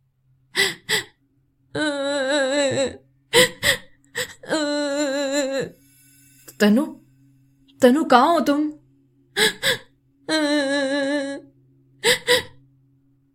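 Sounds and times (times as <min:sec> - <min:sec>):
girl sobbing and crying: 0:01.7 - 0:05.8, 0:09.4 - 0:12.6
speech: 0:06.6 - 0:07.0, 0:07.8 - 0:08.8, 0:09.4 - 0:10.6.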